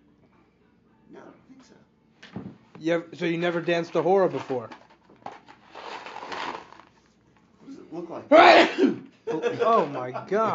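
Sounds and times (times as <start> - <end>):
speech: 1.1 - 2.0, 2.8 - 4.8, 8.0 - 10.5
sneeze: 8.3 - 9.0.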